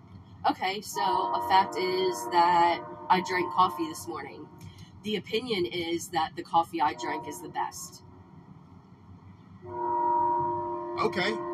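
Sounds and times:
low rumbling rail noise: 0.0 - 11.5
speech: 0.5 - 8.1, 11.0 - 11.5
train horn: 0.9 - 4.6, 6.8 - 7.7, 9.7 - 11.5.

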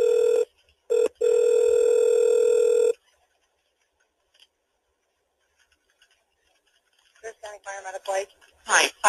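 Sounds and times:
telephone ring tone over the line during call transfer: 0.0 - 3.0
speech: 7.6 - 9.0.

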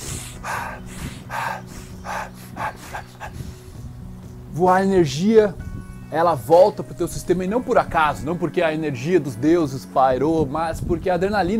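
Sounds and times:
person breathing in quick forceful bursts: 0.0 - 4.4
speech: 4.6 - 11.5.

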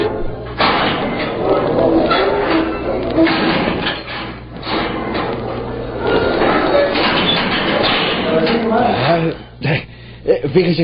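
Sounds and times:
heavy iron jail door creaking and grinding on its hinges: 0.2 - 8.8
heavy iron jail door clanks and thuds: 0.5 - 5.6, 6.4 - 8.7
speech: 10.5 - 10.8.

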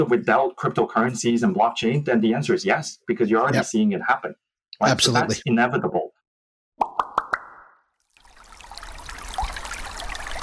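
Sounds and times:
speech: 0.0 - 6.1
resonant water drips: 6.8 - 10.4
continuous trickling running water: 8.0 - 10.4.

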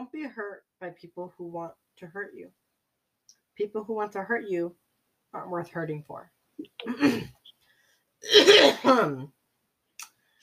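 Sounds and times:
speech: 0.2 - 2.6, 3.6 - 7.4, 8.2 - 9.4
phlegmy coughing: 6.8 - 7.4, 8.2 - 9.2.

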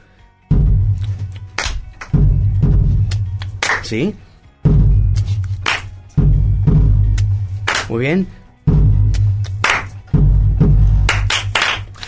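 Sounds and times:
deep booming bombo bass drum strikes: 0.5 - 1.4, 2.2 - 3.6, 4.6 - 5.5, 6.2 - 7.6, 8.7 - 11.5
rhythmic hand clapping: 0.6 - 4.0, 4.8 - 8.0, 8.7 - 12.0
speech: 3.9 - 4.3, 7.9 - 8.4.

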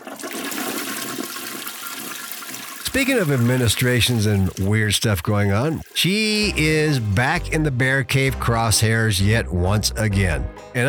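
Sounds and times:
toilet flushing: 0.0 - 8.5
speech: 2.9 - 10.8.

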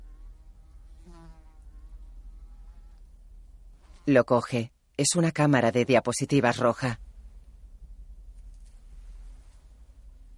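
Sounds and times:
mosquito whining buzz: 0.0 - 3.2
low steady rumble: 0.0 - 10.3
speech: 4.0 - 7.1.

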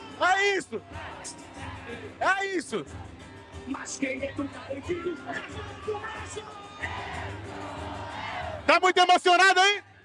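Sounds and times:
dense crowd shouting and cheering at a festival: 0.0 - 10.0
speech: 0.4 - 7.9, 8.7 - 10.0.

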